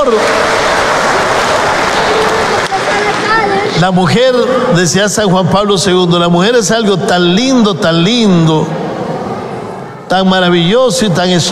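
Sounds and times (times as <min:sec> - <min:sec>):
speech: 0:00.0 - 0:00.4, 0:03.8 - 0:08.8, 0:10.1 - 0:11.5
large audience applauding mothers: 0:00.0 - 0:04.0
crowd voices: 0:00.0 - 0:05.2, 0:07.7 - 0:11.5.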